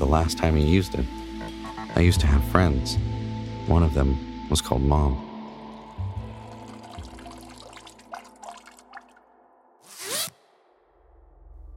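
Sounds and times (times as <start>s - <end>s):
speech: 0.1s - 1.2s, 2.0s - 3.1s, 3.7s - 5.3s
person urinating into a toilet: 5.8s - 9.2s.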